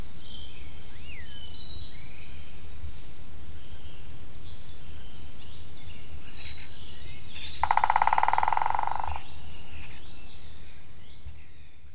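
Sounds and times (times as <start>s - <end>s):
white-backed woodpecker drumming: 7.6s - 9.3s
faint bird calls: 7.6s - 10.0s.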